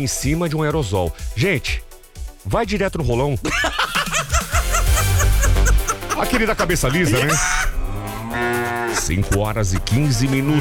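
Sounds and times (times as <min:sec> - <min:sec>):
speech: 0:00.0 - 0:03.9, 0:06.2 - 0:07.7, 0:09.0 - 0:10.5
laughter: 0:03.2 - 0:07.8
cow mooing: 0:07.9 - 0:09.1.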